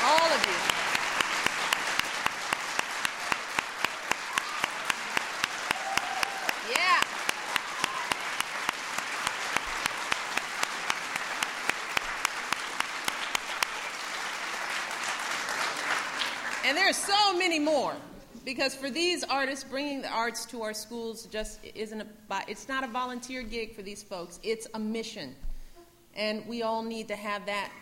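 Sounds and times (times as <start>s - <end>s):
sustained applause from a large crowd: 0.0s - 17.1s
faint whoop: 5.6s - 8.2s
speech: 16.8s - 25.5s, 26.2s - 27.7s.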